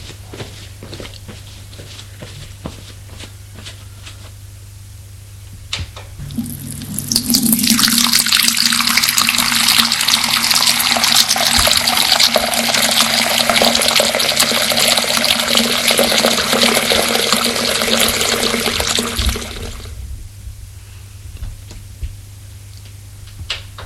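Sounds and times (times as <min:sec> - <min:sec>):
low hum: 0:03.4 - 0:15.0, 0:18.2 - 0:23.8
shower water running: 0:06.2 - 0:19.9.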